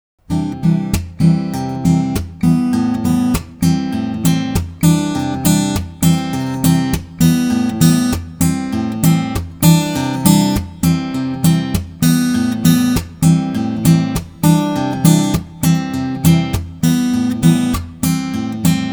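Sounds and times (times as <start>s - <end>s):
acoustic offbeat rhythm changes: 0.3s - 18.9s.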